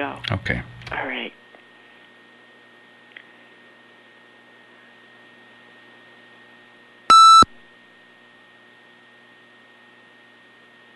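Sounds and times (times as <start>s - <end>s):
speech: 0.0s - 1.4s
faint hum: 0.0s - 10.9s
loud electronic beep: 7.1s - 7.5s.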